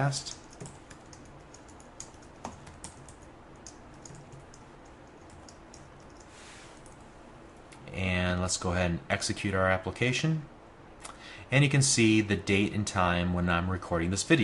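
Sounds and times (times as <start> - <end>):
speech: 0.0 - 0.4, 7.9 - 10.5, 11.5 - 14.4
computer keyboard typing while writing code: 0.3 - 7.0.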